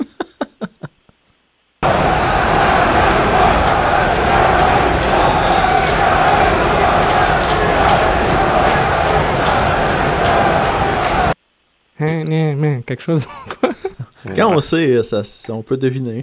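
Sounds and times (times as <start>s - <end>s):
laughter: 0.0s - 1.1s, 13.2s - 14.5s
football ultras in a stadium chanting a player's name: 1.8s - 11.4s
speech: 12.2s - 16.2s.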